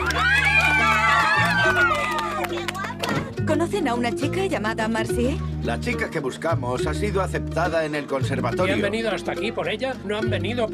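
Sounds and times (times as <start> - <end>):
audience cheering with whooping voices: 0.0 - 3.3
audience clapping: 0.0 - 3.4
speech: 3.7 - 10.7.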